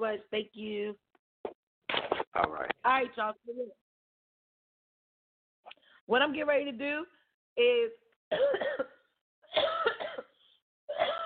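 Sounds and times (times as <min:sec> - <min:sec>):
speech: 0:00.0 - 0:03.8, 0:05.7 - 0:10.2
harsh throaty coughing: 0:08.3 - 0:11.2.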